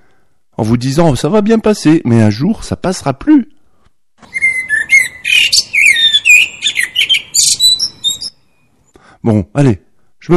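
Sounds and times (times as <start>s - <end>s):
speech: 0.6s - 3.5s, 9.2s - 10.3s
blackbird singing: 4.2s - 8.7s.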